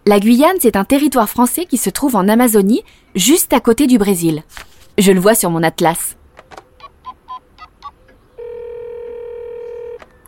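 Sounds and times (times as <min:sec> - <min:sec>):
speech: 0:00.1 - 0:06.2
telephone keypad tones dialing a number: 0:07.8 - 0:10.2
loud steady single-pitched telephone tone: 0:08.4 - 0:10.2.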